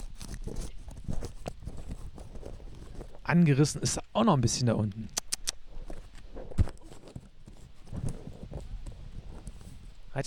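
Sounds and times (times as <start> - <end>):
50-euro paper banknote crinkling and rustling while being smoothed flat: 0.0 - 3.3, 5.2 - 10.0
speech: 3.3 - 5.2.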